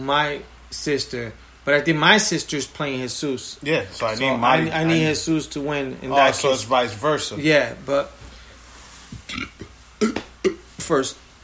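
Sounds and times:
speech: 0.0s - 8.2s, 10.9s - 11.4s
loud guttural burp: 9.3s - 10.7s.

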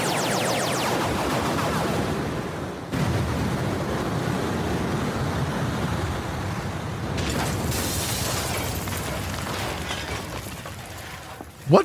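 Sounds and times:
rapid-fire energy blasts from starships: 0.0s - 4.5s
rumbling explosions: 0.8s - 10.8s.

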